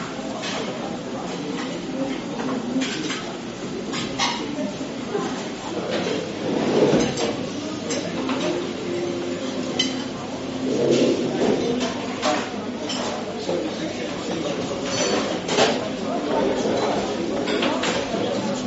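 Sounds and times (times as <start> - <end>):
workplace cafeteria ambience: 0.0 - 18.6.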